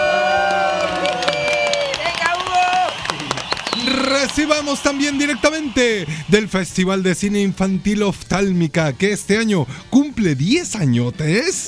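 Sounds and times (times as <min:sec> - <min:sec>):
whoops: 0:00.0 - 0:06.0
crowd clapping and cheering for a guest: 0:00.0 - 0:08.4
speech: 0:04.3 - 0:11.6.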